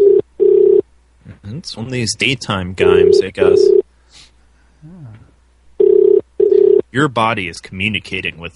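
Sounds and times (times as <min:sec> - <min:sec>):
telephone ring tone with a slightly pulsing buzz: 0:00.0 - 0:00.8, 0:02.8 - 0:03.8, 0:05.8 - 0:06.8
speech: 0:01.6 - 0:03.8, 0:07.0 - 0:08.5.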